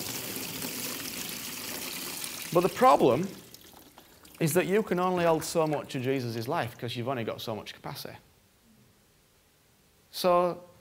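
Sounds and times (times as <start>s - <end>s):
water poured from a bucket: 0.0s - 6.9s
speech: 2.5s - 3.4s, 4.4s - 8.3s, 10.1s - 10.7s.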